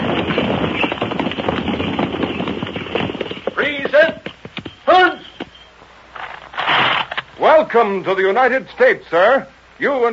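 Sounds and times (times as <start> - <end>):
horses of mounted dragoons riding up to a frontier fort: 0.0 - 6.4
speech: 7.7 - 10.1.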